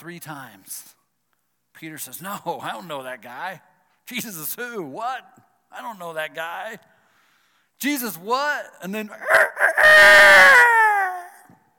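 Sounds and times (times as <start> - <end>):
speech: 0.0 - 1.0, 1.8 - 6.9, 7.8 - 10.6
rooster crowing: 9.2 - 11.3.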